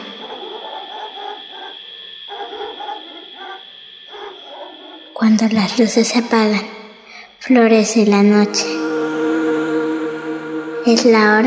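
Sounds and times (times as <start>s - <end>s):
distant dog barking: 0.1s - 5.1s
speech: 5.2s - 6.8s, 7.4s - 8.8s, 10.8s - 11.4s
steady hum: 8.0s - 11.4s.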